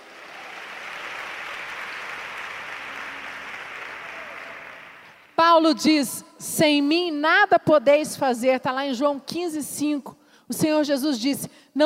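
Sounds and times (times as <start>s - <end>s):
audience applauding: 0.0s - 5.4s
speech: 5.4s - 11.8s.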